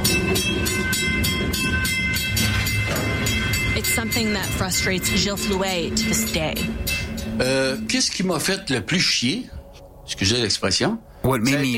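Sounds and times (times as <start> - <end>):
train rolling past on rails: 0.0 - 8.9
sustained metallic tone from passing train: 0.0 - 10.5
speech: 4.2 - 11.7.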